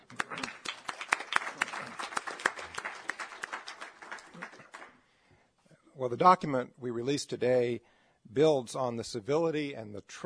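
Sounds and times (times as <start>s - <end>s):
audience applause: 0.0s - 5.0s
speech: 6.0s - 10.2s.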